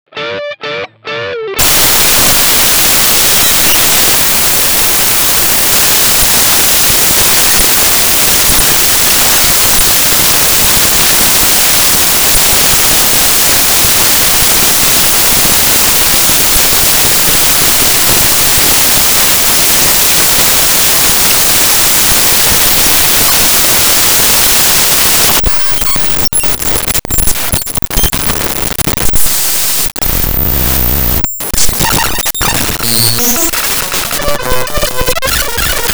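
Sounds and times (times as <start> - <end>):
Strat electric guitar overdrive lead: 0.1 - 35.9.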